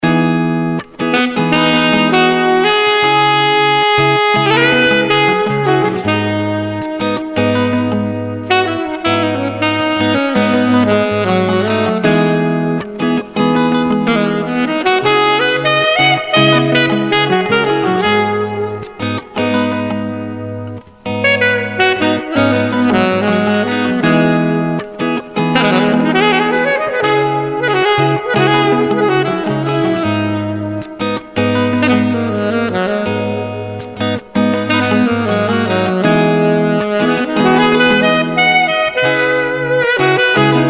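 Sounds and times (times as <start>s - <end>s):
chilled guitar playing: 0.0s - 40.6s.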